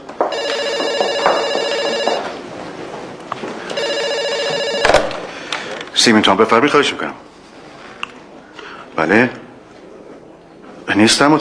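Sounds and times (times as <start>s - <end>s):
faint room noise: 0.0s - 11.4s
telephone ringing in warbling electronic bursts: 0.3s - 2.5s, 3.6s - 5.3s
speech: 6.0s - 7.3s, 9.0s - 9.4s, 11.0s - 11.4s.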